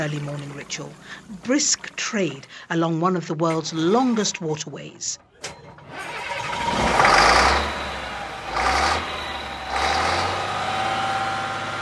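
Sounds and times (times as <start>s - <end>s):
speech: 0.0s - 6.1s
heavy diesel engine of a river barge on the Congo River revving: 5.6s - 11.7s.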